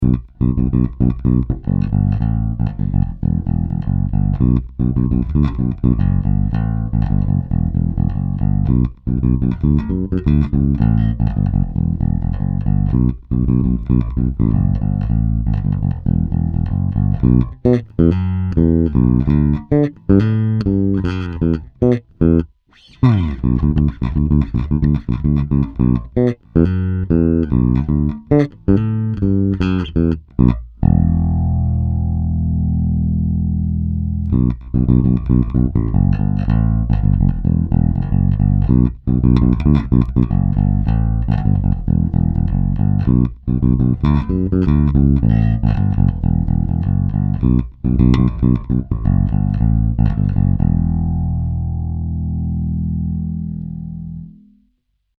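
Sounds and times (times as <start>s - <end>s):
passive bass guitar groove: 0.0s - 54.7s.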